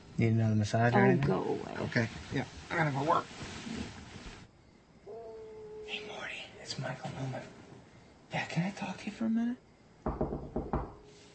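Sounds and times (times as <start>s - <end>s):
speech: 0.2s - 3.6s, 6.8s - 7.6s, 8.3s - 10.9s
firm knocking on a door: 10.0s - 11.0s.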